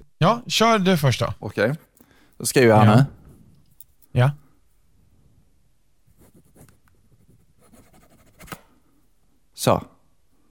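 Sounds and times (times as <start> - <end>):
speech: 0.2 - 3.2, 4.2 - 4.4, 9.6 - 9.9
pen signing a signature on a paper receipt: 6.1 - 8.6.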